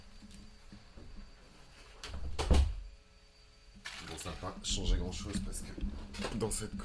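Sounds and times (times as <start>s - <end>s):
door pushed shut with a heavy thud: 2.1s - 2.9s
speech: 4.4s - 6.8s.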